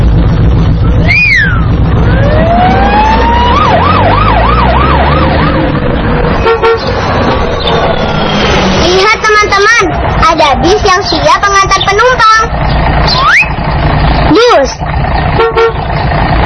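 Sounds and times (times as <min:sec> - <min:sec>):
low police car engine rumble: 0:00.0 - 0:16.4
police car siren wailing: 0:00.2 - 0:11.8, 0:13.0 - 0:13.6.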